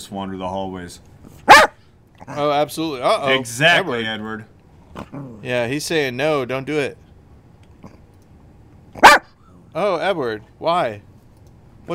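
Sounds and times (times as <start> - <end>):
speech: 0.0 - 1.4, 2.3 - 7.0, 9.8 - 11.1
single sharp dog bark: 1.5 - 1.8, 9.0 - 9.4.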